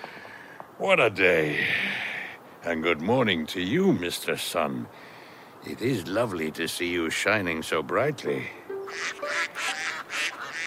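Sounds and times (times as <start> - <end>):
speech: 0.8 - 1.8, 2.6 - 9.3
mother duck with her ducklings quacking: 8.9 - 10.6.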